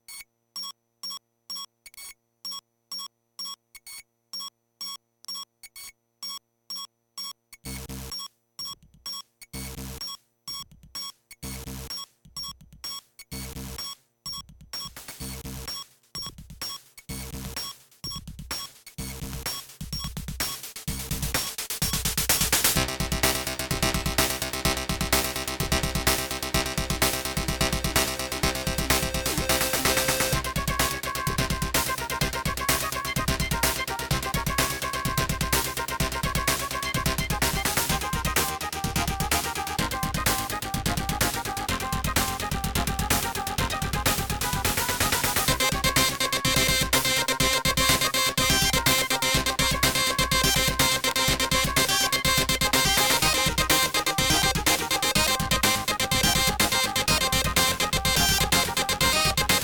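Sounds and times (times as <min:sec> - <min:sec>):
Creative SoundBlaster 16 CT2740 soundcard test audio: 0:11.4 - 0:59.6.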